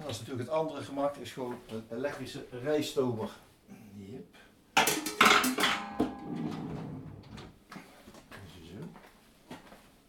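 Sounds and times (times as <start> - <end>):
speech: 0.1 - 4.4
metallic clanks and clatter of a pan being handled while cooking: 4.8 - 7.5.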